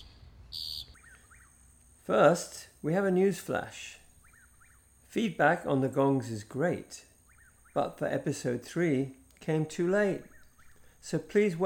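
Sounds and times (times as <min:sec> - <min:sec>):
bird singing outdoors: 0:00.0 - 0:01.9, 0:04.1 - 0:05.0, 0:07.1 - 0:08.1, 0:09.9 - 0:11.0
low rumble of noise: 0:00.0 - 0:11.6
speech: 0:02.1 - 0:04.0, 0:05.2 - 0:07.1, 0:07.8 - 0:10.3, 0:11.0 - 0:11.6.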